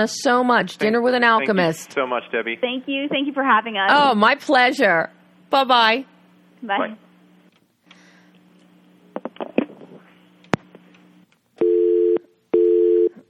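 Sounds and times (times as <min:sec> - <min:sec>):
speech: 0:00.0 - 0:07.0
loud steady electronic phone tones: 0:11.6 - 0:13.2.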